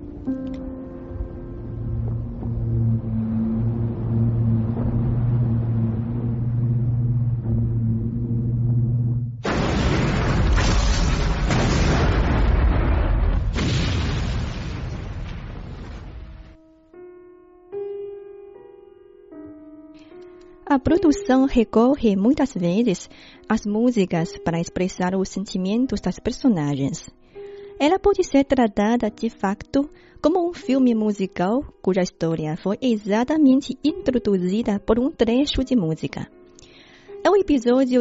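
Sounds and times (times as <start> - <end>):
sustained low droning music: 0.0 - 10.5, 16.3 - 37.9
ship explosion with echoing booms and blasts: 0.0 - 16.6
speech: 0.2 - 0.5, 20.8 - 36.4, 37.2 - 37.9.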